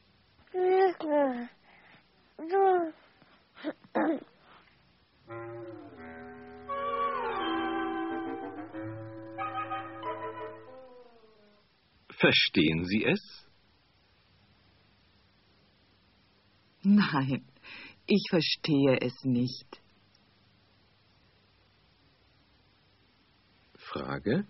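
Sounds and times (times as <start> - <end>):
faint low hum: 0.0 - 24.4
baby babbling and cooing: 0.5 - 1.5, 2.4 - 3.0, 3.6 - 4.4
speech: 0.5 - 1.6, 2.4 - 3.0, 12.2 - 13.4, 16.8 - 19.8, 23.9 - 24.4.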